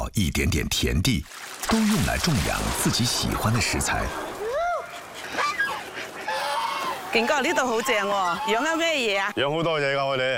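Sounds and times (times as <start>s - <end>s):
speech: 0.1s - 4.3s, 7.1s - 10.3s
geese honking on a small farm plot in Shunde: 4.2s - 9.4s.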